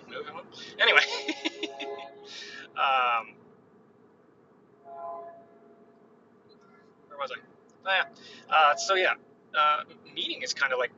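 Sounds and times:
steady low hum: 0:00.0 - 0:10.9
laughter: 0:00.7 - 0:02.6
train horn blast: 0:01.6 - 0:02.6, 0:04.8 - 0:05.8
speech: 0:07.3 - 0:10.9.

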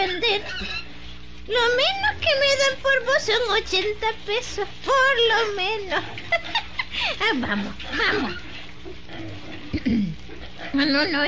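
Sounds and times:
speech: 0:00.2 - 0:00.8, 0:01.5 - 0:09.0, 0:10.8 - 0:11.2
laughter: 0:06.0 - 0:08.4
voice imitating a pig grunting and oinking: 0:07.9 - 0:10.8.

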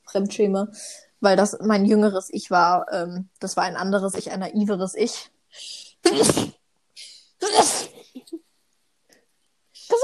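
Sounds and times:
speech: 0:00.1 - 0:06.6, 0:07.4 - 0:08.4
loud sneezes: 0:06.0 - 0:06.6, 0:07.4 - 0:08.1.

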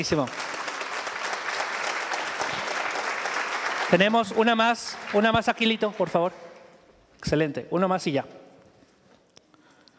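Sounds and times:
speech: 0:00.0 - 0:00.5, 0:03.9 - 0:06.5, 0:07.2 - 0:08.4
crowd clapping: 0:00.0 - 0:06.6.

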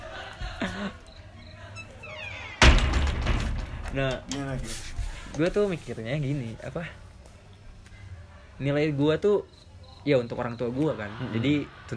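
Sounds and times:
laughter: 0:00.0 - 0:01.8, 0:10.5 - 0:11.9
faint chatter: 0:00.0 - 0:02.6, 0:03.4 - 0:11.9
speech: 0:00.8 - 0:01.0, 0:03.9 - 0:07.0, 0:08.6 - 0:11.9
door being closed: 0:01.8 - 0:04.6.

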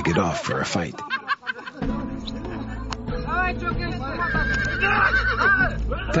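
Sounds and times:
speech: 0:00.0 - 0:01.2, 0:03.5 - 0:06.1
laughter: 0:00.0 - 0:03.3, 0:04.1 - 0:06.1
crowd noise: 0:00.0 - 0:06.1
horse neighing with a high-pitched whinny: 0:04.3 - 0:05.6.

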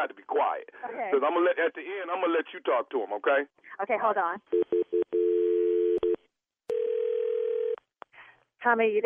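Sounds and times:
speech: 0:00.0 - 0:04.9, 0:08.6 - 0:09.0
electronic phone ringing tone: 0:04.5 - 0:07.8.

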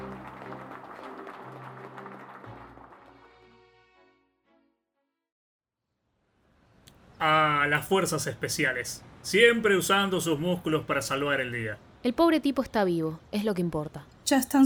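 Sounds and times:
crowd applauding outside: 0:00.0 - 0:03.9
soft noisy background: 0:06.2 - 0:14.6
speech: 0:07.2 - 0:14.6.

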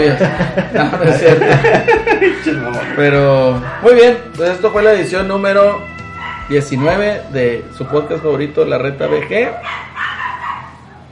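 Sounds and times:
laughter: 0:00.0 - 0:03.0
speech: 0:00.0 - 0:05.9, 0:06.5 - 0:10.1
small dogs barking in high-pitched bursts: 0:02.8 - 0:04.2, 0:06.1 - 0:07.2, 0:09.0 - 0:11.1.

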